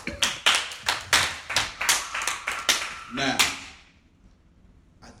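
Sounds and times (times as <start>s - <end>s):
audience clapping: 0.0s - 3.9s.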